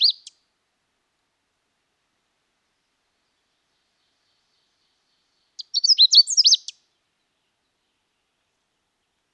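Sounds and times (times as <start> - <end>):
Canada warbler singing a rushed varied warble: 5.6 - 6.8.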